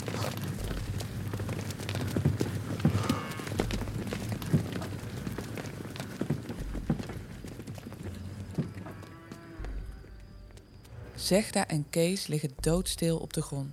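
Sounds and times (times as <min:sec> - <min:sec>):
herd of startled cows running through a soaking-wet pasture: 0:00.0 - 0:11.0
cows mooing: 0:02.8 - 0:03.6, 0:08.6 - 0:10.2
speech: 0:11.3 - 0:13.7.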